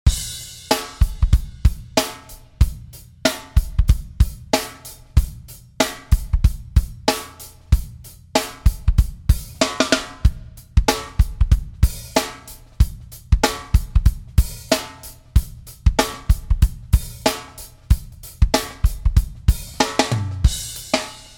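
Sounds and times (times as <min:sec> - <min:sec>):
acoustic drums playing a shuffle: 0:00.0 - 0:21.3.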